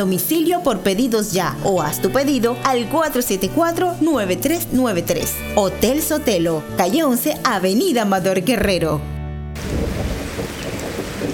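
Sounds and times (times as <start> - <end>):
speech: 0.0 - 9.1
deep rumbling thunder: 9.6 - 11.3
steady dense rainfall: 9.6 - 11.3.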